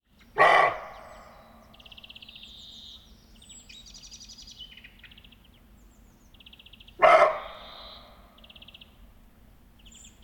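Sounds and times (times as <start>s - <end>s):
songbirds trilling and chirping: 0.0s - 10.2s
wild roe deer barking: 0.4s - 1.6s, 7.0s - 8.2s.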